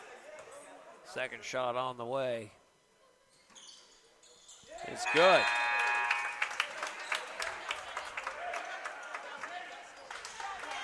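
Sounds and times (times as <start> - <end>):
speech: 1.1 - 2.6, 4.9 - 5.6
basketball game crowd applauding: 5.1 - 10.8
sharp individual hand claps: 5.3 - 9.2.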